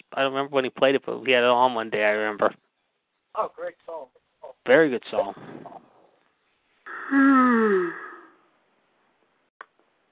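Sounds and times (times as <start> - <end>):
speech: 0.2 - 2.6, 3.4 - 5.9, 7.1 - 8.0
person yawning loudly: 6.9 - 8.3.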